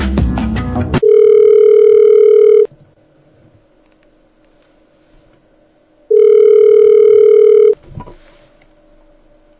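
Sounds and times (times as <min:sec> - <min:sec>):
buzzing ringback tone of an outgoing telephone call: 0:01.0 - 0:02.7, 0:06.1 - 0:07.8.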